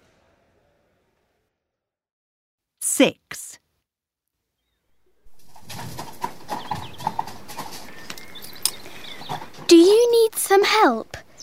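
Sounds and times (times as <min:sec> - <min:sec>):
speech: 0:03.0 - 0:03.4, 0:09.7 - 0:11.2
birds chirping: 0:04.6 - 0:11.4
horse hooves clip-clopping: 0:05.3 - 0:10.2.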